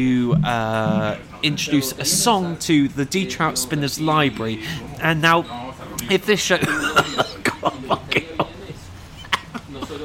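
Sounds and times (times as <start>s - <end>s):
soft throaty sounds: 0.0s - 2.4s
speech: 0.0s - 8.2s
person coughing: 6.6s - 7.6s
laughter: 6.6s - 10.0s.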